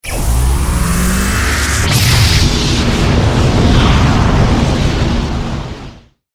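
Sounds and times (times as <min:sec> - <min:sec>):
energy charge gun: 0:00.0 - 0:05.2.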